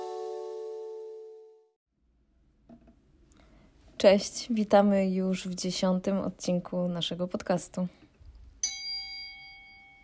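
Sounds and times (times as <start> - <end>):
speech: 4.0 - 8.0
single small bell struck: 8.6 - 10.0.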